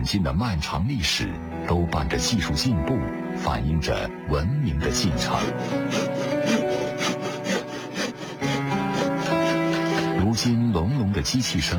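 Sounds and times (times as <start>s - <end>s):
speech: 0.0s - 6.6s, 10.4s - 11.7s
hand saw cutting wood in traditional carpentry: 5.0s - 10.3s.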